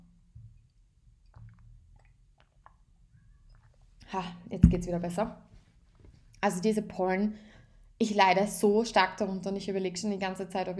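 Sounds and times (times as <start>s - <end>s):
person drinking water: 1.2s - 3.9s
speech: 4.1s - 5.5s, 6.4s - 10.7s.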